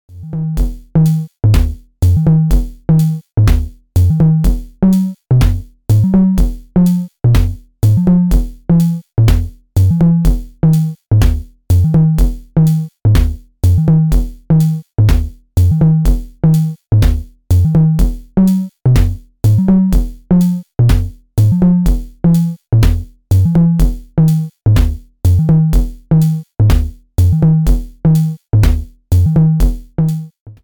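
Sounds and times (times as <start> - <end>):
Eurorack drum module sequence with independent pitch: 0.1 - 30.6.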